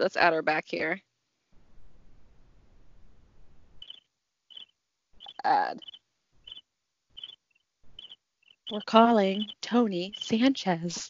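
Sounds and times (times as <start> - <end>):
speech: 0.0 - 1.1, 5.4 - 6.0, 8.7 - 11.0
cricket chirping: 3.8 - 6.6, 7.2 - 11.0.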